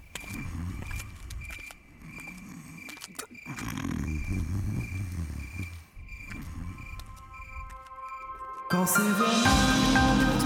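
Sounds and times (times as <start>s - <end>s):
crickets chirping: 0.0s - 8.8s
sleeping villager snoring deeply: 3.5s - 7.0s
speech: 8.8s - 10.3s.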